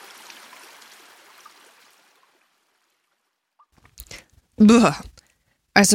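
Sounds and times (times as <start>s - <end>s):
stream rushing and gurgling inside a cave: 0.0s - 3.0s
faint water dripping inside a cave: 0.0s - 4.5s
speech: 4.6s - 5.1s, 5.8s - 5.9s.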